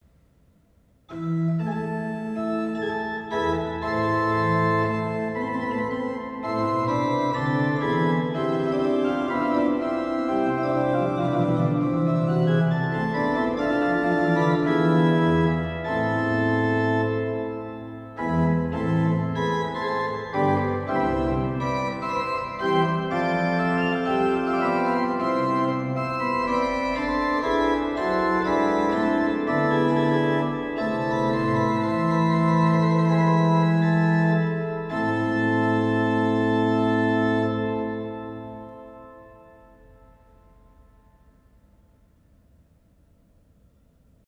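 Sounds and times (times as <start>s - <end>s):
pipe organ: 1.1s - 41.4s.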